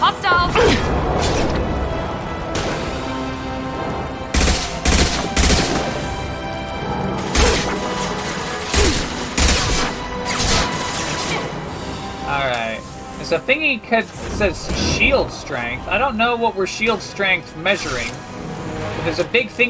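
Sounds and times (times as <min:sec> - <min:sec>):
continuous noisy video game background: 0:00.0 - 0:19.6
video game gunfire bursts: 0:04.4 - 0:06.1, 0:07.3 - 0:11.1
speech: 0:13.3 - 0:18.3, 0:19.0 - 0:19.6.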